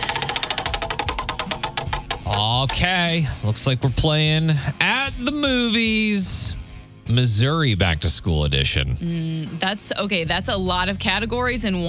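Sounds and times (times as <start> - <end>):
prize wheel spinning with ticking pointer: 0.0 - 3.0
speech: 2.5 - 11.8.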